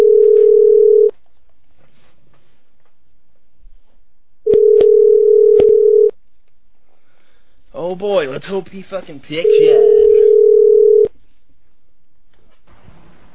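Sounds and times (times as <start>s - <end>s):
steady telephone dial tone: 0.0s - 1.1s, 4.5s - 6.1s, 10.0s - 11.1s
speech: 8.0s - 10.2s.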